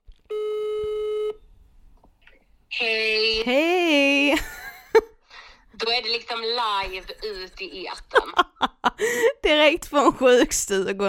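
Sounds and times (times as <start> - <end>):
faint noise: 0.0 - 11.0
phone call ringing tone: 0.3 - 1.4
speech: 6.4 - 11.0.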